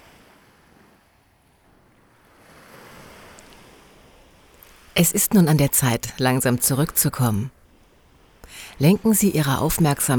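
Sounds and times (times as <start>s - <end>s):
sea waves rolling in and hissing on shore: 2.4s - 10.1s
speech: 5.0s - 7.6s, 8.8s - 10.1s.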